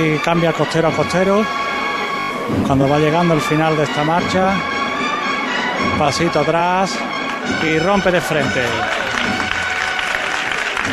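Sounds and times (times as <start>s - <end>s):
speech: 0.0s - 1.7s, 2.5s - 4.7s, 5.8s - 9.0s
faint murmur of voices: 0.0s - 10.9s
large crowd applauding in a packed square: 4.9s - 10.9s.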